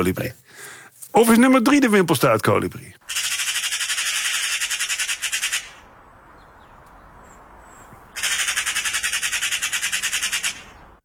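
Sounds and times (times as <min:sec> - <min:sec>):
speech: 0:00.0 - 0:03.2
bird calling with rapid buzzy repeated notes: 0:03.0 - 0:11.0.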